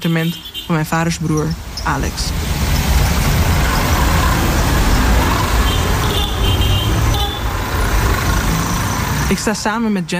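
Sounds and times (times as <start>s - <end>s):
speech: 0.0s - 2.5s, 9.3s - 10.1s
mopeds and auto-rickshaws droning in dense street traffic: 0.0s - 10.1s
vehicle horn toot: 4.3s - 7.6s.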